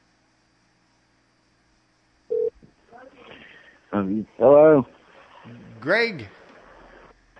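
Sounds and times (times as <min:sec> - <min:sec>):
electronic tone from a Skype call placed to a landline phone: 0:02.3 - 0:02.5
speech: 0:04.0 - 0:06.4.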